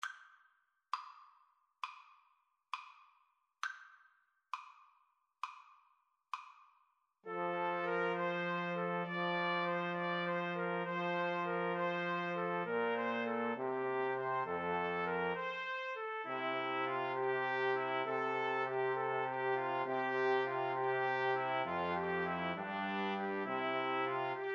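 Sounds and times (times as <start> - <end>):
clarinet: 7.3 - 24.5
trombone: 7.3 - 24.5
trumpets: 7.3 - 24.5.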